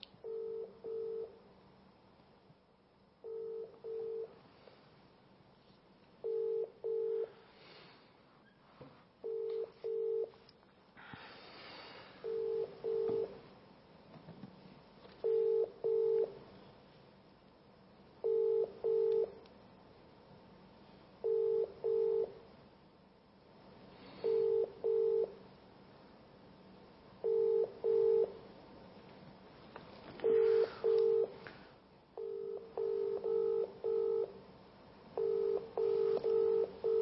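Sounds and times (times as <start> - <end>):
faint hiss: 0.0 - 36.9
telephone ringing tone on the line from mobile phones: 0.2 - 1.4, 3.2 - 4.4, 6.2 - 7.3, 9.2 - 10.4, 12.2 - 13.4, 15.2 - 16.4, 18.2 - 19.4, 21.2 - 22.4, 24.2 - 25.4, 27.2 - 28.4, 30.2 - 31.4, 32.2 - 34.4, 35.2 - 36.9.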